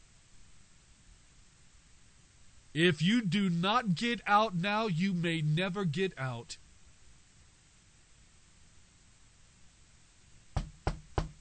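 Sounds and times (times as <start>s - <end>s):
speech: 2.8s - 6.6s
firm knocking on a door: 10.6s - 11.3s.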